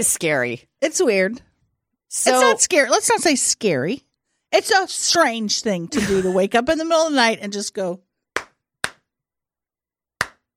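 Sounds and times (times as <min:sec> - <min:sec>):
speech: 0:00.0 - 0:01.5, 0:02.1 - 0:08.1
loud hand claps: 0:08.4 - 0:09.1, 0:10.2 - 0:10.5.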